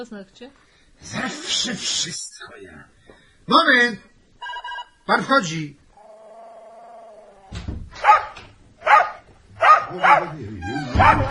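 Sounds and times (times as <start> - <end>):
speech: 0.0 - 4.1, 5.1 - 5.8, 9.9 - 11.3
dog barking: 8.0 - 11.3.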